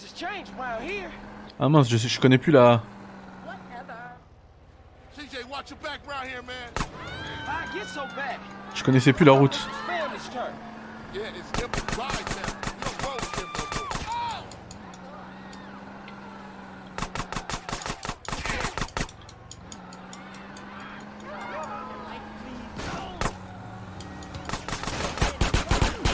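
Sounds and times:
speech: 0:00.2 - 0:03.0, 0:05.5 - 0:12.6
rapid video game gunfire: 0:11.5 - 0:14.1, 0:17.0 - 0:19.1, 0:24.4 - 0:26.1.

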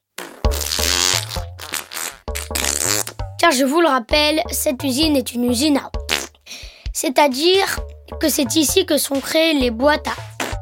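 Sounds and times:
small buzzy fart noises: 0:00.0 - 0:03.3, 0:06.0 - 0:06.5
speech: 0:03.4 - 0:06.0, 0:07.0 - 0:10.2.

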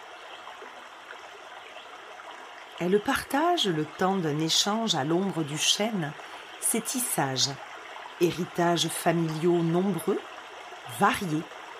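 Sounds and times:
stream babbling and lapping over rocks: 0:00.0 - 0:11.7
speech: 0:02.8 - 0:10.3, 0:10.9 - 0:11.6.

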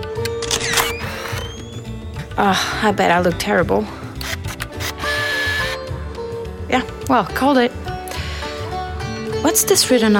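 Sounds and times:
old camera taking a photograph: 0:00.2 - 0:01.8, 0:04.2 - 0:05.8
speech: 0:02.4 - 0:04.0, 0:06.7 - 0:07.8, 0:09.6 - 0:10.1.

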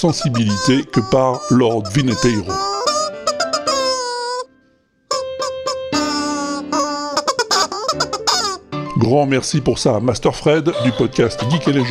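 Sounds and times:
speech: 0:00.0 - 0:02.8, 0:09.0 - 0:11.9
rubber chicken squeak toy played as a melody: 0:00.0 - 0:08.7.

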